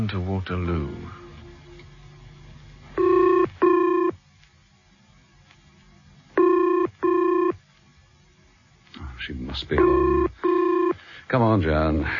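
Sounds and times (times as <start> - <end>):
speech: 0.0 - 1.2, 9.6 - 10.3, 11.3 - 12.1
faint hum: 0.0 - 12.1
telephone ringing with double-burst rings: 3.0 - 4.2, 6.4 - 7.6, 9.8 - 11.0.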